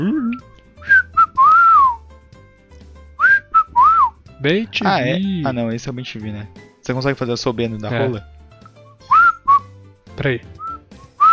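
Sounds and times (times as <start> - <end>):
person whistling an imitation of a great kiskadee call: 0.0 - 2.0, 3.2 - 4.2, 9.1 - 9.7, 10.6 - 11.3
speech: 4.4 - 8.4, 10.2 - 10.6.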